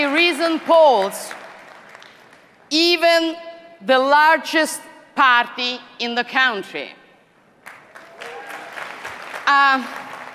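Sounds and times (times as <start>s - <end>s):
speech: 0.4s - 1.3s, 2.7s - 7.0s, 9.5s - 10.0s
conference audience applauding: 1.3s - 2.4s, 7.6s - 10.3s
loud cheer or shout: 8.0s - 9.4s.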